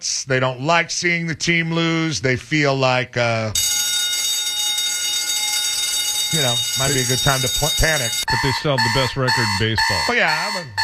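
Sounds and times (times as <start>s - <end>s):
speech: 0.0s - 3.7s, 6.3s - 10.8s
alarm bell ringing: 3.6s - 10.8s.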